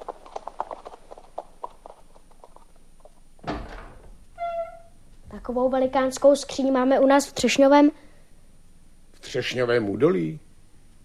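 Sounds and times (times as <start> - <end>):
horse hooves clip-clopping on a hard surface: 0.0 - 4.5
brief creaking scrape: 4.3 - 5.0
speech: 5.5 - 8.0, 9.3 - 10.4.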